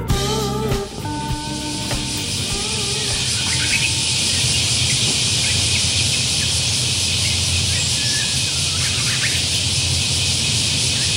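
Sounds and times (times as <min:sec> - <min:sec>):
cicadas droning outdoors in late July: 0:00.1 - 0:11.1
Japanese bush warbler singing: 0:00.6 - 0:11.1.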